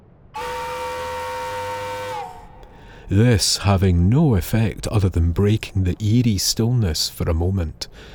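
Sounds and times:
ship's steam whistle blowing: 0:00.4 - 0:03.5
speech: 0:03.1 - 0:08.1.

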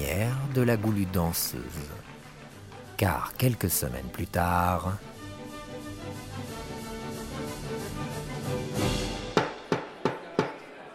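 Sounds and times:
music: 0:00.0 - 0:10.9
speech: 0:00.2 - 0:02.1, 0:03.0 - 0:05.2
judge's gavel striking a wooden block: 0:09.4 - 0:10.6.

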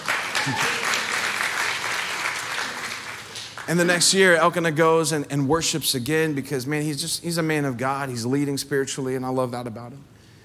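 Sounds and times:
crowd clapping in a large room: 0:00.0 - 0:04.4
speech: 0:00.4 - 0:00.7, 0:03.7 - 0:10.2.

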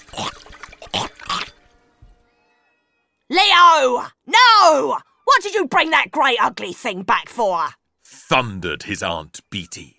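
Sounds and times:
water sloshing in a fish bowl: 0:00.0 - 0:01.6
water trickling in a fish bowl: 0:00.0 - 0:01.8
speech: 0:03.8 - 0:09.9.

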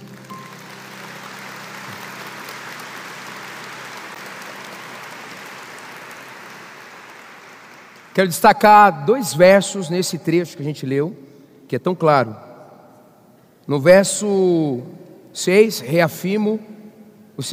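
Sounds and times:
audience applause for the actors: 0:00.0 - 0:08.2
speech: 0:08.2 - 0:12.5, 0:13.7 - 0:16.8, 0:17.4 - 0:17.5.

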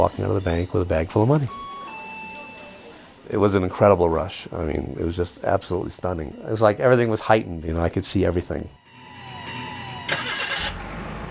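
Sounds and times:
speech: 0:00.0 - 0:01.7, 0:03.3 - 0:08.8
car engine starting: 0:09.5 - 0:11.2.

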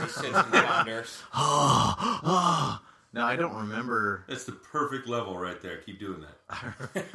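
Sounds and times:
laughter: 0:00.0 - 0:01.3, 0:06.5 - 0:07.1
speech: 0:00.1 - 0:07.1
heavy breathing against the microphone: 0:01.1 - 0:03.2.

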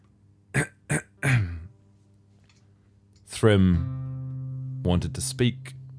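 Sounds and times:
person coughing: 0:00.6 - 0:01.7
throat clearing: 0:00.6 - 0:01.7
speech: 0:03.4 - 0:04.0, 0:04.8 - 0:05.8.

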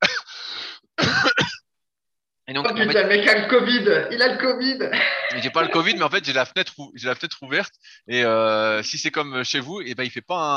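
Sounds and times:
person coughing: 0:00.0 - 0:00.3, 0:01.0 - 0:01.6
speech: 0:02.5 - 0:10.5
laughter: 0:04.8 - 0:06.2.

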